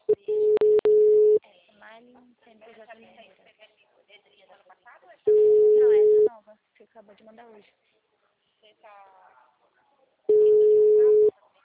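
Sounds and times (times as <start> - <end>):
telephone ringback tone while calling a number: 0.3 - 1.4, 5.3 - 6.3, 10.3 - 11.3
speech: 7.0 - 7.9, 8.6 - 9.5.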